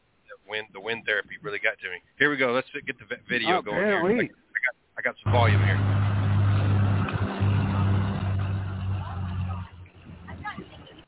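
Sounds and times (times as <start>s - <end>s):
speech: 0.5s - 4.4s, 5.0s - 6.0s
Freightliner semi truck engine idling: 5.3s - 11.0s.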